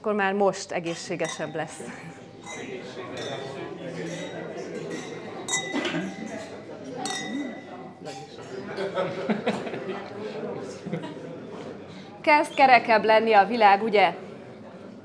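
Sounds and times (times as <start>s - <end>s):
speech: 0.0s - 2.8s, 12.2s - 14.2s
people chatting: 0.0s - 14.2s
wine glasses clinking in a toast: 0.9s - 8.4s
people chuckling: 8.6s - 11.7s.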